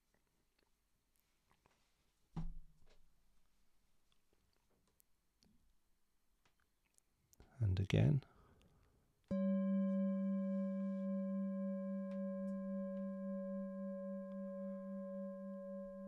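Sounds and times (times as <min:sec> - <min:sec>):
speech: 0:07.7 - 0:08.3
meditation bell struck and ringing: 0:09.3 - 0:16.0.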